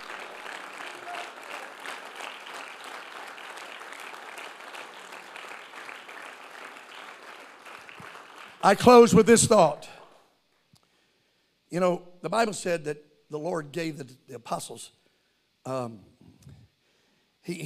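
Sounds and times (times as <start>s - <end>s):
large church audience applauding: 0.0s - 9.2s
speech: 8.6s - 10.0s, 11.7s - 15.0s, 15.6s - 16.1s, 17.4s - 17.6s.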